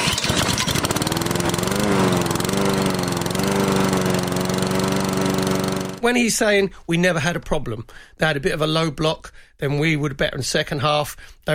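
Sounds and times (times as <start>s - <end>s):
lawnmower engine running with a rough buzzing drone: 0.0s - 6.3s
speech: 6.0s - 11.5s.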